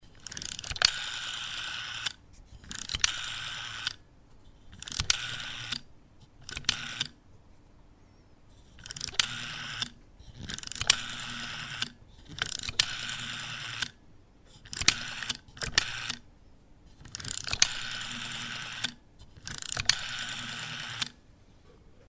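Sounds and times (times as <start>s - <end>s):
telephone rotary dial: 0.1s - 4.0s, 4.6s - 7.2s, 8.5s - 16.2s, 16.9s - 21.2s.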